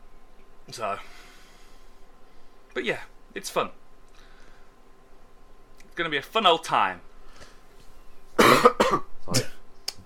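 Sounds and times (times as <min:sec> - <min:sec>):
speech: 0:00.7 - 0:01.3, 0:02.8 - 0:03.8, 0:06.0 - 0:07.1, 0:08.7 - 0:09.5
harsh coughs: 0:08.4 - 0:09.6.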